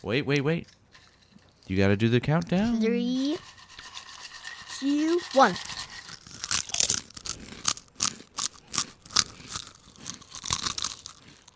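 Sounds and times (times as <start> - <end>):
speech: 0.0 - 0.8, 1.7 - 3.6, 4.8 - 5.8
crunching and chewing kettle-cooked New York barbecue potato chips: 5.7 - 11.5.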